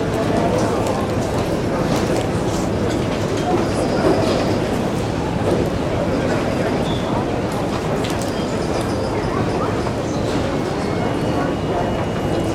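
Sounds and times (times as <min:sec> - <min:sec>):
many voices talking in an airport terminal: 0:00.0 - 0:12.5.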